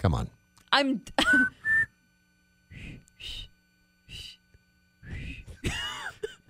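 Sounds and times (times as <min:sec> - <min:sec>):
speech: 0:00.0 - 0:01.6
faint wavering whistle tones: 0:01.3 - 0:05.4
breathy puffs of air from a failed attempt at whistling: 0:02.7 - 0:04.4, 0:05.0 - 0:05.6.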